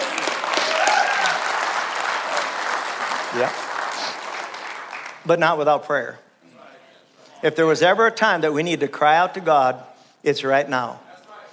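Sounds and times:
church audience clapping as a clap offering: 0.0s - 5.3s
speech: 3.3s - 3.6s, 5.2s - 6.2s, 7.4s - 11.0s.

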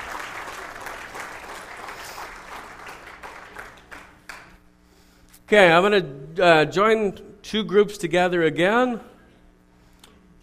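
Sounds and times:
audience applause: 0.0s - 4.6s
sharp claps: 0.0s - 4.6s
speech: 5.5s - 9.1s.

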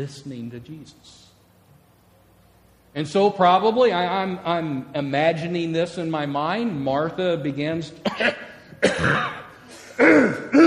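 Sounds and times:
speech: 0.0s - 1.3s, 2.9s - 9.4s, 10.0s - 10.6s
woman clearing her throat and coughing in a kitchen: 8.0s - 10.6s.

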